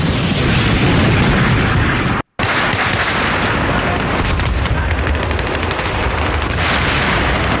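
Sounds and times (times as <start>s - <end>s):
explosions: 0.0s - 7.5s
gunfire: 2.4s - 7.5s.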